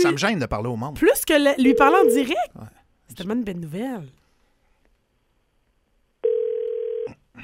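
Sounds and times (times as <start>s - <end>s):
speech: 0.0s - 4.2s
telephone call tone beep: 1.6s - 2.3s, 6.2s - 7.1s.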